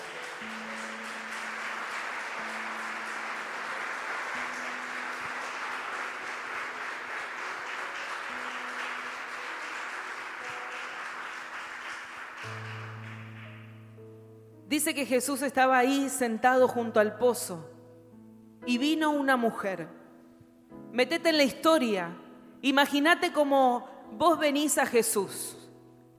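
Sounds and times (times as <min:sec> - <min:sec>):
large crowd applauding at a worship service: 0:00.0 - 0:13.7
low sustained music tones: 0:00.0 - 0:21.4
speech: 0:14.7 - 0:17.7, 0:18.7 - 0:20.0, 0:20.9 - 0:25.6.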